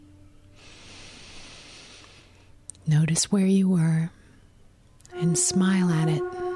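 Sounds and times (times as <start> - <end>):
deep inhale through the nose: 0.6 - 2.6
speech: 2.9 - 4.2, 5.2 - 6.4.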